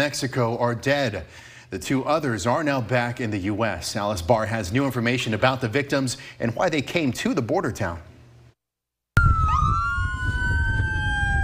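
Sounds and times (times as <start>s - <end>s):
speech: 0.0s - 8.1s
ambulance sirens wailing: 9.2s - 11.4s.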